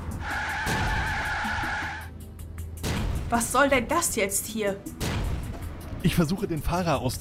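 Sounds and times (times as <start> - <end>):
tires screeching as a vehicle skids: 0.0 - 2.1
speech: 3.3 - 5.1, 6.0 - 7.1.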